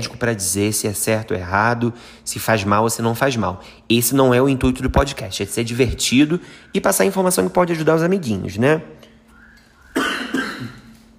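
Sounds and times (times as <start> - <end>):
speech: 0.0 - 9.1
harsh raspy coughs: 9.9 - 11.0.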